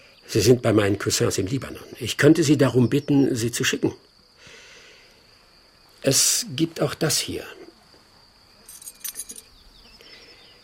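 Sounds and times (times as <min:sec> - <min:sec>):
faint steady insect-like whine: 0:00.0 - 0:10.6
speech: 0:00.3 - 0:04.1, 0:06.0 - 0:07.6
old key being handled, jingling and clinking: 0:08.7 - 0:09.5.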